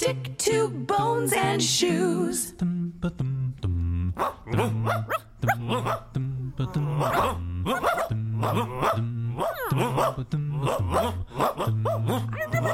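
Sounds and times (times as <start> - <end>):
speech: 0.0 - 4.3
steady bass-heavy musical backing: 2.6 - 12.7
dog barking and growling: 4.1 - 12.7.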